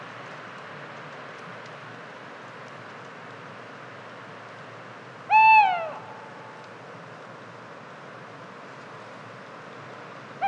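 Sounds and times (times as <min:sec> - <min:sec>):
Tawny owl short hoarse descending call: 0:05.3 - 0:06.2.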